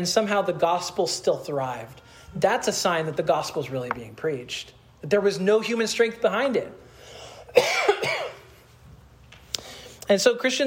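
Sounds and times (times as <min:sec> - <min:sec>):
speech: 0:00.0 - 0:06.8, 0:07.5 - 0:08.2, 0:10.1 - 0:10.6
person coughing during a Sunday school lesson: 0:07.5 - 0:08.6.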